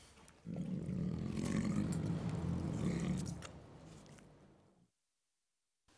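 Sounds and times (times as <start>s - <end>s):
tiger deep rumbling growl while eating: 0.4s - 4.7s.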